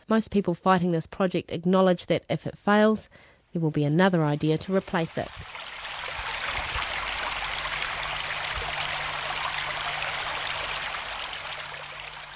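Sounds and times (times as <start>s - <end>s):
speech: 0.1s - 5.7s
faint low hum: 4.4s - 12.3s
river water flowing over a riverbed: 4.7s - 12.3s.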